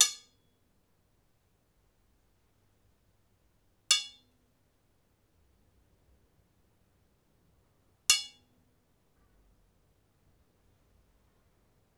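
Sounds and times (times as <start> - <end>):
hits on cell iron bars: 0.0 - 0.4, 3.9 - 4.2, 8.1 - 8.4.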